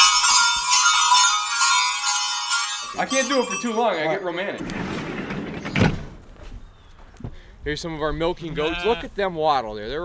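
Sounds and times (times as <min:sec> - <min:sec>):
German sleigh bells on a strap shaken: 0:00.0 - 0:04.5
speech: 0:03.0 - 0:05.0, 0:07.6 - 0:10.0.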